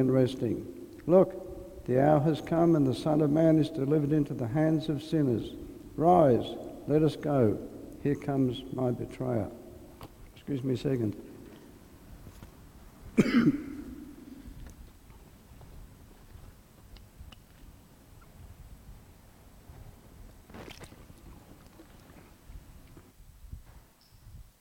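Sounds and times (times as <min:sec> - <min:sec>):
speech: 0:00.0 - 0:09.6, 0:10.5 - 0:11.3
throat clearing: 0:13.1 - 0:14.6
person coughing: 0:13.2 - 0:14.5.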